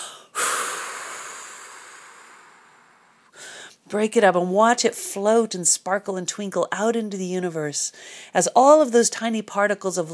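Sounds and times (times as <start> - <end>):
person blowing out a held breath: 0.0 - 3.8
speech: 3.9 - 10.1.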